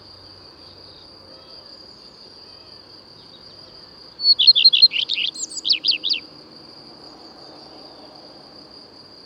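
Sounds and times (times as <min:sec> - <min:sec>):
common redstart singing: 0:04.2 - 0:06.3.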